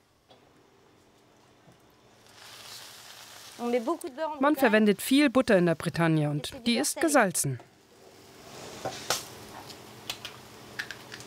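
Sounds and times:
crêpe batter sizzling on a crêpe iron brushed with egg yolk: 0:01.9 - 0:04.4, 0:07.9 - 0:11.2
speech: 0:03.6 - 0:07.7.

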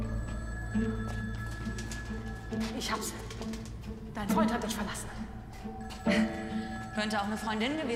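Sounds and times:
landline telephone bell ringing: 0:00.1 - 0:03.1, 0:05.7 - 0:07.9
speech: 0:02.8 - 0:03.2, 0:04.2 - 0:05.1, 0:07.0 - 0:07.9.

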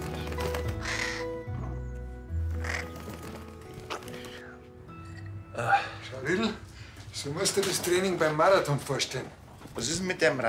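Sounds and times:
crow cawing: 0:00.1 - 0:01.8, 0:02.6 - 0:03.3
speech: 0:07.2 - 0:10.4.

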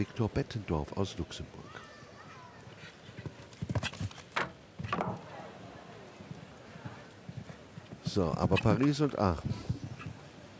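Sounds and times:
speech: 0:00.0 - 0:01.8, 0:08.2 - 0:09.7
show-jumping horse's hooves clip-clopping: 0:02.9 - 0:05.3, 0:06.3 - 0:10.4.

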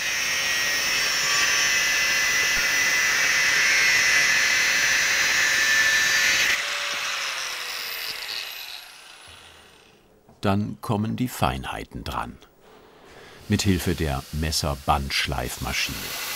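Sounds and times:
angle grinder cutting steel knife blade: 0:00.0 - 0:10.1, 0:13.4 - 0:16.3
speech: 0:10.4 - 0:12.5, 0:13.5 - 0:16.3.

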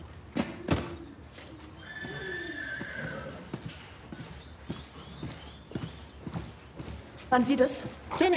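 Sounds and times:
horse hooves clopping on a hard surface: 0:01.3 - 0:08.3
horse whinnying: 0:01.8 - 0:03.6
speech: 0:07.3 - 0:08.3.

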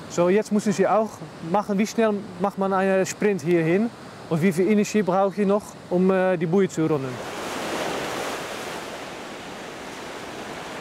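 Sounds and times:
speech: 0:00.2 - 0:07.4
ocean surf waves breaking: 0:06.9 - 0:10.7.

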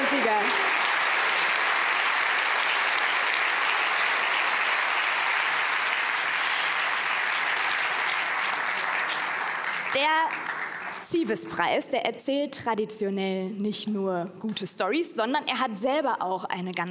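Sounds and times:
large audience applause: 0:00.0 - 0:11.2
speech: 0:10.0 - 0:10.4, 0:11.1 - 0:16.8.

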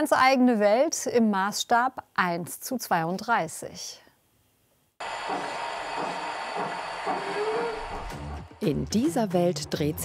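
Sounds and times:
speech: 0:00.0 - 0:04.0, 0:05.0 - 0:05.6, 0:08.6 - 0:10.0
faint rising whine: 0:05.0 - 0:08.6.

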